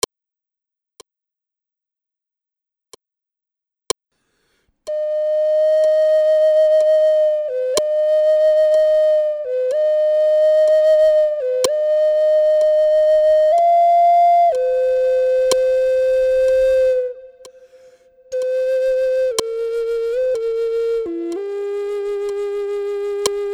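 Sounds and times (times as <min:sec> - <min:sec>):
Zuni sunrise flute: 0:04.9 - 0:23.5.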